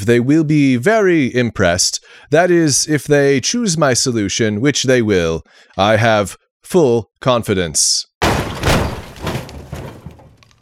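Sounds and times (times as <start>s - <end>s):
speech: 0.0s - 8.5s
machines being sabotaged with heavy crashing thuds and smashes: 8.2s - 10.5s.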